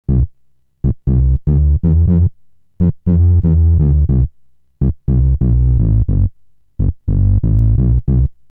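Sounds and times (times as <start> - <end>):
analog bass on HardSID: 0.1 - 8.4.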